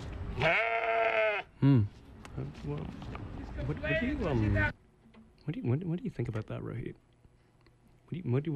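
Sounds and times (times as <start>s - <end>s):
speech: 0.4s - 0.7s, 1.6s - 4.8s, 5.5s - 7.0s, 8.1s - 8.5s
goats bleating: 0.4s - 1.5s.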